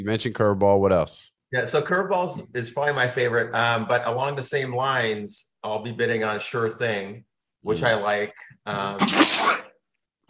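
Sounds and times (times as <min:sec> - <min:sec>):
speech: 0:00.0 - 0:09.4
loud sneeze: 0:09.0 - 0:09.8.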